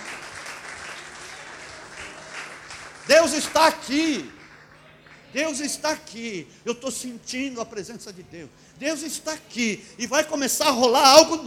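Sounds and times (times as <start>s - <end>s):
congregation applauding at a worship service: 0.0s - 6.1s
speech: 3.1s - 4.4s, 5.3s - 11.4s.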